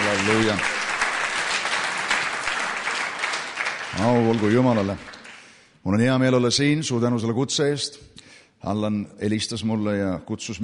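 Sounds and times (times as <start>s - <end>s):
church congregation applauding: 0.0s - 5.7s
speech: 0.2s - 0.8s, 4.0s - 5.2s, 5.8s - 10.6s.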